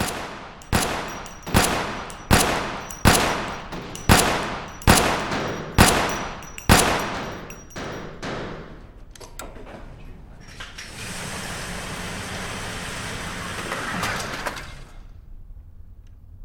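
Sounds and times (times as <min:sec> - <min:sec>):
volley of gunfire: 0:00.0 - 0:08.8.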